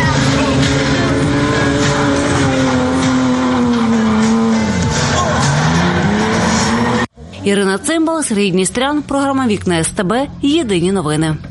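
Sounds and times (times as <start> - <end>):
drifting car tires squealing against the pavement: 0.0 - 7.6
drifting car engine droning and wavering in pitch: 0.0 - 11.4
speech: 7.4 - 11.4.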